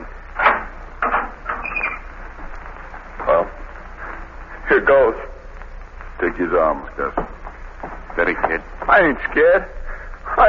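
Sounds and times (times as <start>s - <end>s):
door clunk: 0.4s - 2.0s
door lock clacking and scraping as it is unlocked: 0.4s - 2.1s
door hinges giving a brief creaking squeal: 0.4s - 2.2s
speech: 4.7s - 5.3s, 6.2s - 7.3s, 8.2s - 9.8s.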